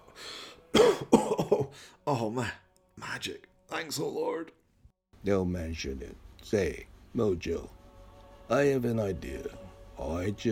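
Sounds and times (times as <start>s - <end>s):
person inhaling: 0.0s - 0.7s, 1.7s - 2.0s
person coughing after smoking: 0.8s - 1.8s
speech: 2.1s - 4.6s, 5.2s - 7.8s, 8.5s - 10.5s.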